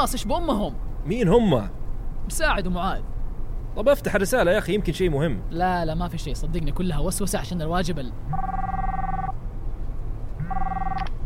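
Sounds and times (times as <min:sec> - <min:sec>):
speech: 0:00.0 - 0:03.1, 0:03.7 - 0:08.8
steady low hum: 0:00.0 - 0:11.2
phone ringing with an incoming call in bright electronic tone bursts: 0:08.3 - 0:09.4, 0:10.4 - 0:11.2.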